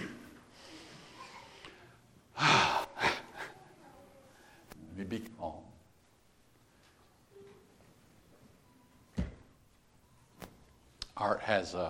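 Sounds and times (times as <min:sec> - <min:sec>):
person taking a deep breath: 0:02.4 - 0:03.6
speech: 0:05.1 - 0:05.8, 0:11.2 - 0:11.8.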